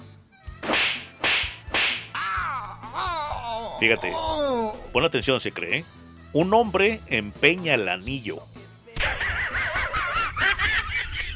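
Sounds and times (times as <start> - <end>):
sharp loud slaps to the face: 0.6 - 2.2
wavering wailing cry: 2.1 - 4.9
speech: 3.8 - 8.5
laughter: 9.0 - 11.3.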